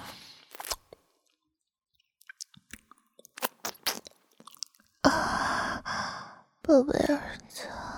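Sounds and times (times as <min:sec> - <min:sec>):
quiet chewing of tasty food: 0:00.4 - 0:05.0
speech: 0:06.7 - 0:07.7.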